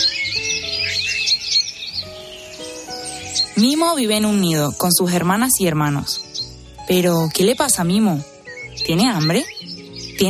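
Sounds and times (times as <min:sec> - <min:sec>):
small birds chirping and twittering: 0:00.0 - 0:10.2
soft sustained tonal music bed: 0:00.0 - 0:10.2
speech: 0:03.6 - 0:06.3, 0:06.9 - 0:09.5.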